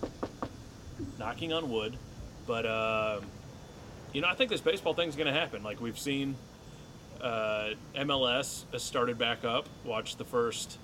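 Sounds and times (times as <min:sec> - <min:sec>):
knocking on wood: 0:00.0 - 0:01.2
speech: 0:01.1 - 0:03.4, 0:04.1 - 0:06.5, 0:07.2 - 0:10.8.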